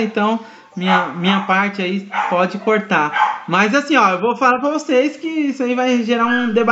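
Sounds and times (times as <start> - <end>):
speech: 0.0 - 6.6
dog barking: 0.8 - 3.5.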